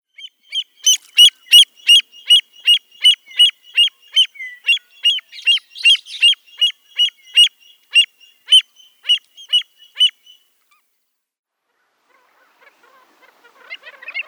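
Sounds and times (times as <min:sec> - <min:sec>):
American avocet: 0:00.5 - 0:10.1.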